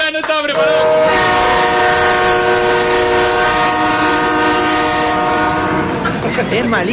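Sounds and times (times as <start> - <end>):
speech: 0.1 - 0.9, 6.5 - 6.8
tractor horn blast: 0.6 - 6.0
low tractor engine rumble: 0.6 - 6.8.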